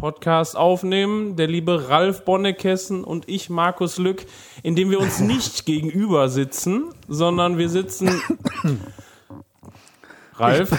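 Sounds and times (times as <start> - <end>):
speech: 0.0 - 9.1, 10.4 - 10.7
man coughing: 5.0 - 5.6, 8.0 - 9.2, 10.5 - 10.7.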